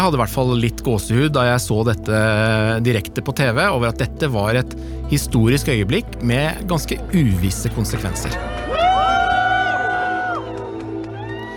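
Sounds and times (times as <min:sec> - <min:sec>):
speech: 0:00.0 - 0:08.8
crowd cheering at airport arrival: 0:08.0 - 0:11.5
whoops and shouts: 0:08.3 - 0:11.5.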